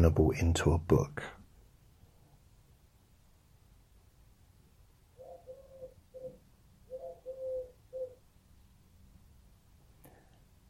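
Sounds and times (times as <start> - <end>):
speech: 0.0 - 1.4
pigeon cooing in low throaty calls: 5.2 - 8.2.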